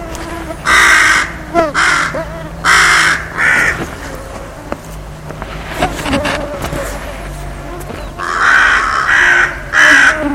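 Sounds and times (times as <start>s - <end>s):
bird harsh raspy calls with curved tonal notes: 0.2s - 4.4s, 7.8s - 10.3s.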